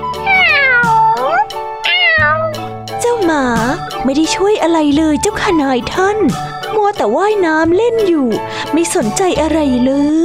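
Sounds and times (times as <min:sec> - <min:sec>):
cat meowing while fawning on its owner: 0:00.1 - 0:02.7
speech: 0:04.1 - 0:10.2.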